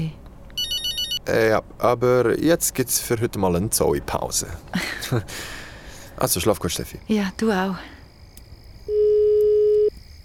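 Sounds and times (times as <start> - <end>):
faint hiss: 0.0 - 10.2
telephone ringback tone during outgoing call: 0.6 - 1.2, 8.9 - 9.9
speech: 1.3 - 5.6, 6.2 - 8.0
laughter: 4.7 - 5.5.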